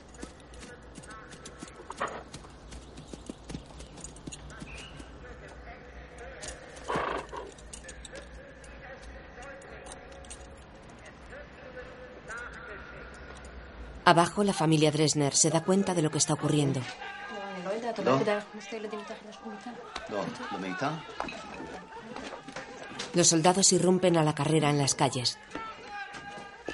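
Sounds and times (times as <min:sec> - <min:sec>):
horse hooves clip-clopping during a horseback ride up a hilltop: 0:00.0 - 0:11.1, 0:25.4 - 0:26.7
speech: 0:14.1 - 0:17.1, 0:18.0 - 0:21.6, 0:23.2 - 0:25.6.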